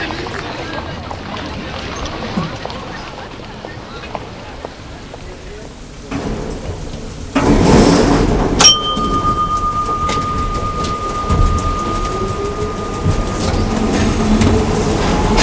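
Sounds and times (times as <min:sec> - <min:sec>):
metro train rumbling: 0:00.0 - 0:15.4
sharp clank: 0:07.4 - 0:15.4
long thin high-pitched squeal: 0:07.7 - 0:15.4.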